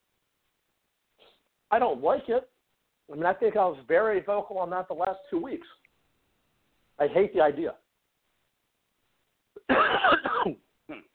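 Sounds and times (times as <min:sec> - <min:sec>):
speech: 0:01.7 - 0:02.5, 0:03.1 - 0:05.8, 0:07.0 - 0:07.8, 0:09.7 - 0:11.1
harsh drawn-out coughing fit: 0:09.6 - 0:11.1.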